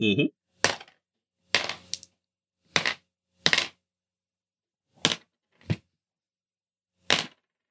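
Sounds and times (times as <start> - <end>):
person speaking: 0.0 - 0.3
six dice rolled for a stunt in a game clattering onto a hard surface: 0.6 - 3.8, 5.0 - 5.8, 7.0 - 7.5.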